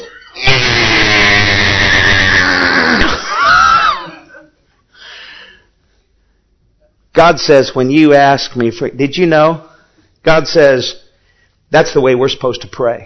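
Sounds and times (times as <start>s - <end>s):
voice imitating a baby screaming for food: 0.0s - 4.2s
speech: 7.2s - 11.0s, 11.7s - 13.0s.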